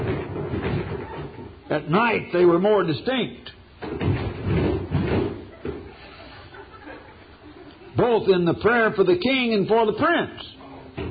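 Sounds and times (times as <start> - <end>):
heavy booming knocks: 0.0 - 1.6, 3.8 - 5.8
speech: 1.7 - 4.0, 8.1 - 10.6
laughter: 5.5 - 8.0.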